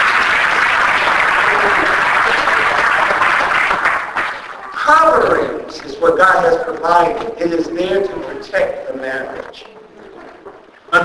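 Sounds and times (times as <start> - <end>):
crowd clapping hands in sustained dense applause: 0.0 - 5.5
speech: 4.9 - 9.7.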